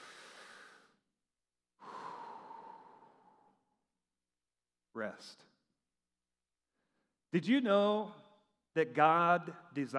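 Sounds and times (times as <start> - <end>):
group taking a deep breath in and out: 0.0 - 1.1, 1.7 - 3.9
speech: 5.0 - 5.5, 7.3 - 8.2, 8.8 - 9.9.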